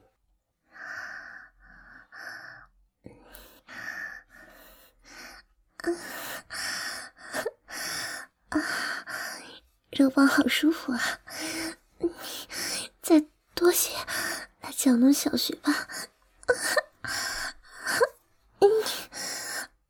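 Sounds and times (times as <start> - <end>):
woman panting heavily while feigning sex: 3.4 - 9.6, 10.9 - 13.1, 13.9 - 14.6, 15.6 - 19.8
speech: 10.0 - 11.2, 13.1 - 14.2, 14.8 - 15.9.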